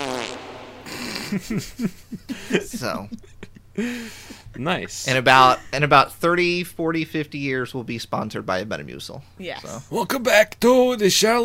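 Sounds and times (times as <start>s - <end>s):
comic fart sound effect: 0.0s - 1.5s
laughter: 0.9s - 6.0s
speech: 1.3s - 11.4s.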